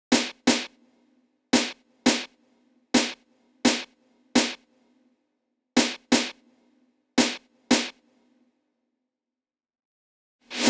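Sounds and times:
snare drum track in B minor: 0.1s - 0.8s, 1.6s - 2.4s, 3.0s - 4.7s, 5.8s - 6.5s, 7.2s - 8.2s.

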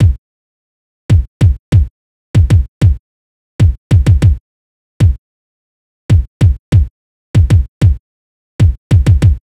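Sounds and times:
hip hop kick drum in A minor: 0.0s - 0.2s, 1.1s - 3.0s, 3.6s - 4.4s, 5.0s - 5.2s, 6.1s - 8.0s, 8.6s - 9.4s.

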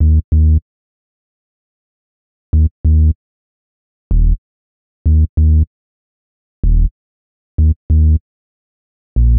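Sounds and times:
bass in E-flat minor: 0.0s - 0.6s, 2.6s - 3.2s, 4.1s - 4.4s, 5.1s - 5.7s, 6.6s - 6.9s, 7.6s - 8.2s, 9.2s - 9.3s.

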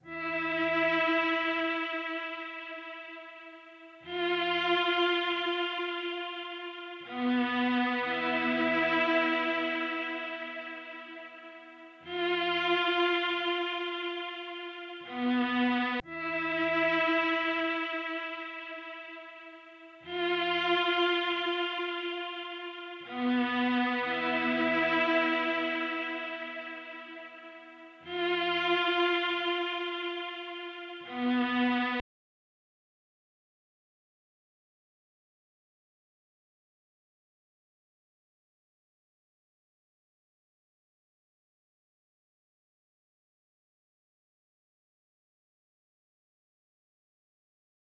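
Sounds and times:
strings in A minor: 0.0s - 32.0s.

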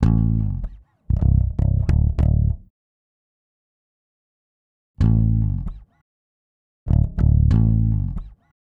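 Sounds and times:
hip hop exotica bass line in A minor: 0.0s - 2.6s, 5.0s - 5.8s, 6.9s - 8.3s.

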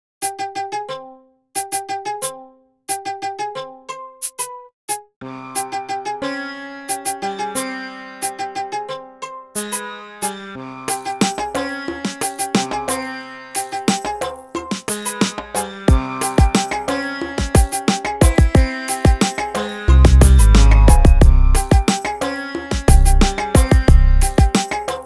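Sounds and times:
exotic hip hop beat in C minor: 1.6s - 2.3s, 6.9s - 8.7s, 9.6s - 25.0s.

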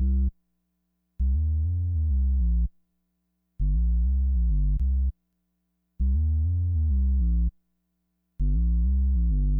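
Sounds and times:
bass in C minor at 100 BPM: 0.0s - 0.4s, 1.2s - 2.8s, 3.6s - 5.2s, 6.0s - 7.6s, 8.4s - 9.5s.

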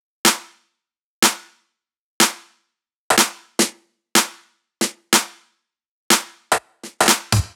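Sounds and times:
future house EDM snare loop drop: 2.2s - 2.5s, 3.1s - 5.4s, 6.1s - 7.5s.

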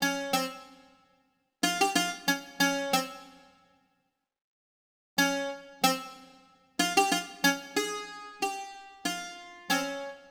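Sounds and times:
bouzouki: 0.0s - 0.9s, 1.6s - 3.5s, 5.2s - 10.3s.

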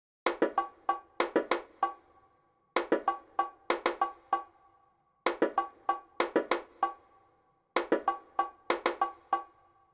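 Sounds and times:
hip hop bongos in C minor at 96 BPM: 0.3s - 2.0s, 2.8s - 4.5s, 5.3s - 7.0s, 7.8s - 9.5s.

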